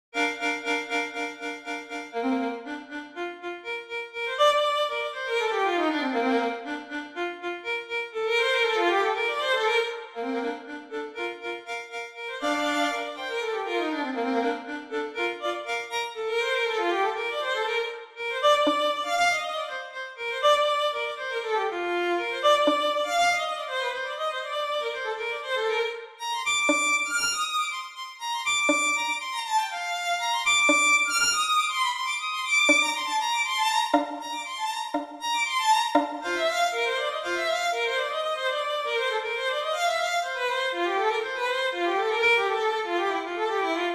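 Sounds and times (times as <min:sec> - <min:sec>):
violin solo: 0:00.2 - 0:43.9.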